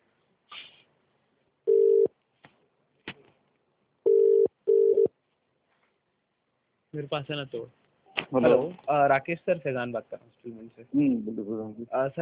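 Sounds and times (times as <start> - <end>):
phone ringing tone: 1.7 - 2.1, 4.1 - 5.1
speech: 7.0 - 12.1.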